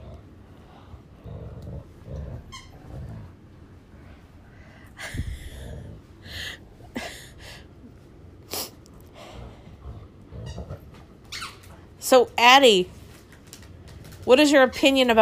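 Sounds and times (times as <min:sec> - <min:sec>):
dog growling: 0:00.0 - 0:03.6, 0:05.3 - 0:06.2, 0:09.0 - 0:11.9
speech: 0:12.1 - 0:13.0, 0:14.3 - 0:15.2.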